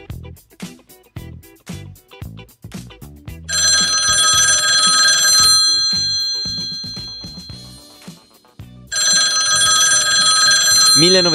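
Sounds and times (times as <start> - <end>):
old-style telephone bell ringing: 3.5 - 8.2, 8.9 - 11.3
speech: 11.0 - 11.3.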